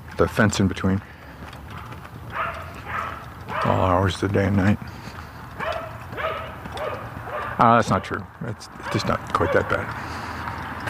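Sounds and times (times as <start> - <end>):
speech: 0.2 - 1.1, 3.8 - 5.0, 7.6 - 10.2
dog barking: 1.7 - 3.9, 5.6 - 8.2, 8.8 - 9.8.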